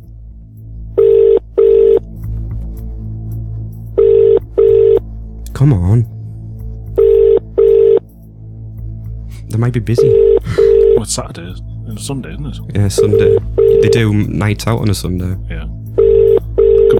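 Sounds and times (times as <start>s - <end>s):
low hum: 0.0s - 16.9s
telephone ringback tone on an outgoing call: 1.0s - 2.0s, 4.0s - 5.0s, 7.0s - 8.0s, 10.0s - 11.0s, 13.0s - 14.0s, 16.0s - 16.9s
speech: 5.6s - 6.2s, 9.6s - 15.7s.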